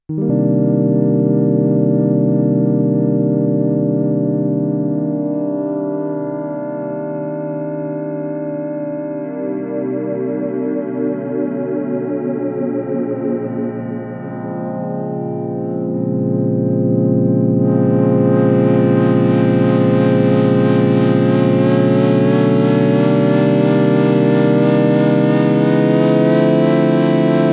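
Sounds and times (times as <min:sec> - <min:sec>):
modal synth pad: 0:00.1 - 0:27.5.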